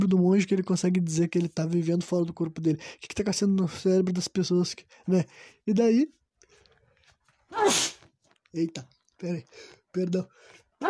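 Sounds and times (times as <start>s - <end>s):
speech: 0.0s - 6.2s, 7.5s - 10.8s
loud sneeze: 7.5s - 8.1s.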